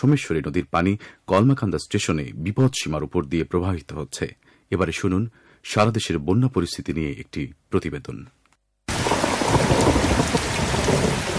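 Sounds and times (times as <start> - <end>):
speech: 0.0 - 8.4
heavy continuous rain downpour roar: 8.9 - 11.3
low rumbling thunder: 8.9 - 11.3.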